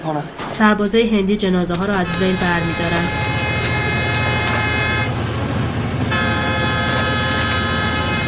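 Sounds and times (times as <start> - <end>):
speech: 0.0 - 3.3
rumble of a train approaching: 0.6 - 8.2
train horn blaring in long sustained blasts: 1.9 - 8.2.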